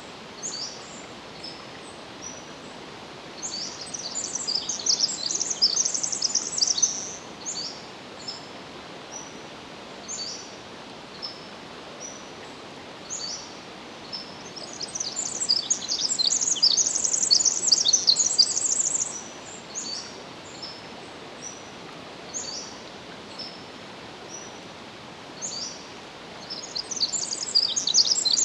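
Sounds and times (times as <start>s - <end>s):
Pacific wren song: 0.0s - 2.5s, 3.4s - 8.5s, 13.0s - 20.8s, 25.4s - 28.4s
steady background hiss: 0.0s - 28.4s.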